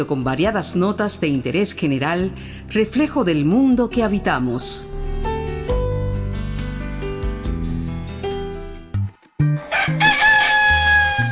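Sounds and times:
speech: 0.0s - 5.0s
melodic instrumental music: 3.5s - 11.3s
rooster crowing: 9.6s - 11.3s.

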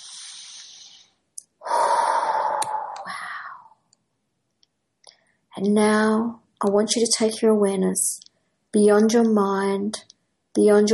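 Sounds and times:
deep breath during a guided relaxation exercise: 0.0s - 3.8s
speech: 5.6s - 10.9s.

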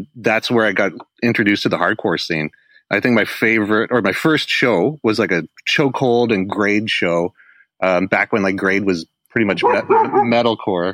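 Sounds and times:
speech: 0.0s - 10.9s
dog barking: 9.6s - 10.5s.

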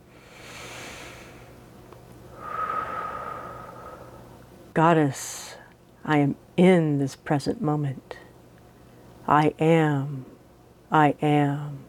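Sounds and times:
slow breaths: 0.1s - 1.6s, 2.3s - 4.4s
speech: 4.8s - 8.2s, 9.3s - 10.3s, 10.9s - 11.8s.

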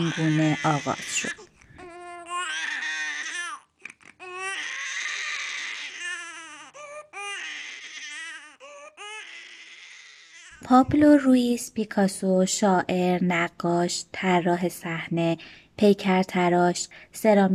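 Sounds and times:
speech: 0.0s - 1.4s, 10.7s - 17.5s
newborn baby crying: 0.0s - 10.6s.

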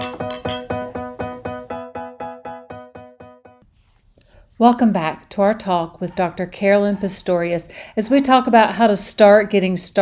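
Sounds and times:
glasses clinking in a toast: 0.0s - 1.4s
speech: 4.6s - 10.0s.

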